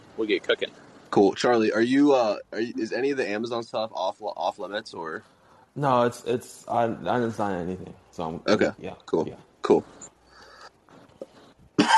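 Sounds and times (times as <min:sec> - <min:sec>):
speech: 0:00.2 - 0:10.1
faint breathy rustling: 0:09.8 - 0:11.7
person coughing harshly: 0:11.8 - 0:11.9.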